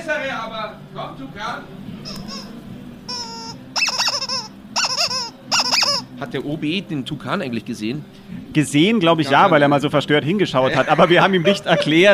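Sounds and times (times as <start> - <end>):
speech: 0.0 - 2.6, 6.2 - 12.1
squeaky toy squeaking: 2.1 - 6.2
laughter: 10.6 - 12.1.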